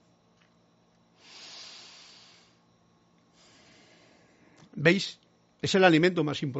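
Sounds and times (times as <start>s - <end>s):
deep breath in and out: 1.1s - 4.6s
speech: 4.8s - 6.5s.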